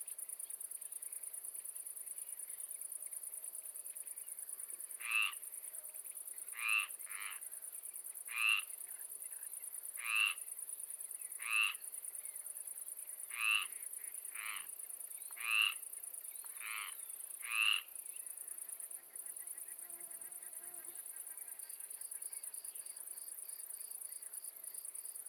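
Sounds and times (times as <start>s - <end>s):
frog croaking on a calm evening in the Marais poitevin, France: 5.0s - 5.4s, 6.5s - 7.4s, 8.3s - 8.7s, 10.0s - 10.4s, 11.4s - 11.8s, 13.3s - 14.7s, 15.4s - 15.8s, 16.6s - 17.9s
insects buzzing between swamps and fields in the Marais poitevin, France: 13.4s - 21.8s.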